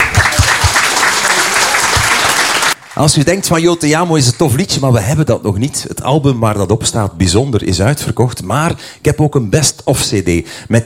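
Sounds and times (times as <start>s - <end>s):
audience applause: 0.0s - 3.8s
speech: 3.0s - 10.8s.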